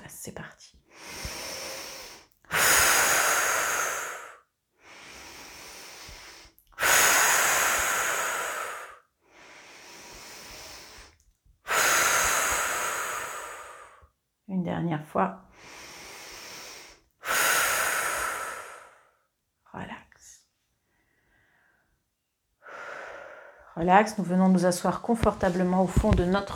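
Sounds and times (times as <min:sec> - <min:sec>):
slow deep breathing during a guided relaxation exercise: 0:00.9 - 0:14.1, 0:15.5 - 0:19.3, 0:20.8 - 0:22.0, 0:22.6 - 0:23.8
speech: 0:14.8 - 0:15.4, 0:23.8 - 0:26.5.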